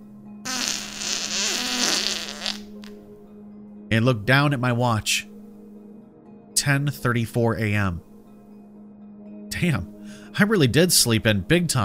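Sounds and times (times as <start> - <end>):
long loud fart: 0.4 - 3.0
speech: 3.9 - 5.3, 6.6 - 8.1, 9.6 - 11.8.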